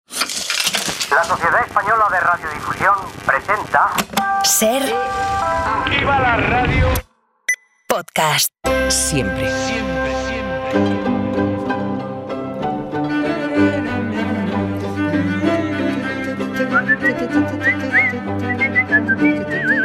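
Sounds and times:
speech: 0:01.1 - 0:07.0, 0:08.0 - 0:10.0, 0:10.7 - 0:11.0
full steady instrumental backing: 0:08.6 - 0:19.8
people whistling a tune: 0:16.6 - 0:19.8.

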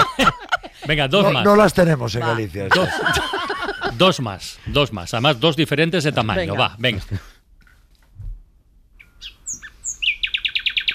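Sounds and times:
laughter: 0:00.0 - 0:04.3
speech: 0:00.9 - 0:03.3, 0:04.0 - 0:07.3
nightingale singing: 0:09.0 - 0:10.9.

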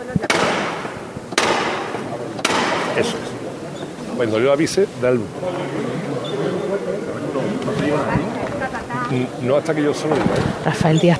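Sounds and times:
murmur of a crowd: 0:00.0 - 0:11.1
hard hammer knocks on a processional float: 0:00.3 - 0:03.0
speech: 0:03.0 - 0:03.3, 0:04.2 - 0:05.9, 0:07.6 - 0:11.1.

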